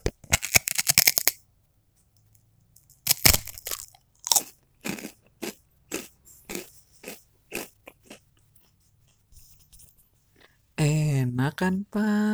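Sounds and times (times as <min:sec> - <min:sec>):
crunching while eating noodle crackers: 0:00.0 - 0:01.4, 0:02.8 - 0:09.2
speech: 0:11.5 - 0:12.3.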